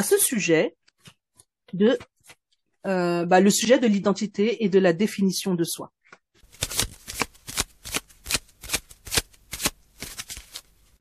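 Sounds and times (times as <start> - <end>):
speech: 0.0 - 2.1, 2.8 - 6.0
tarot cards being shuffled: 6.4 - 11.0.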